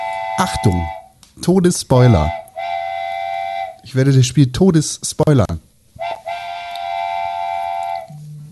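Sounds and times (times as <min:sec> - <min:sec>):
train-style whistle sound effect: 0:00.0 - 0:01.2, 0:02.0 - 0:03.9, 0:06.0 - 0:08.3
speech: 0:00.4 - 0:02.4, 0:03.9 - 0:05.7.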